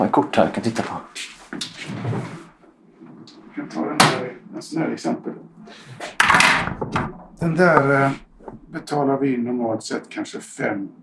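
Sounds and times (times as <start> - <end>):
speech: 0.1 - 1.4, 4.6 - 5.8, 6.9 - 11.0
small display cabinet door swinging open with a creak and rattle: 6.0 - 8.8
thud of a cabinet door: 6.5 - 8.9.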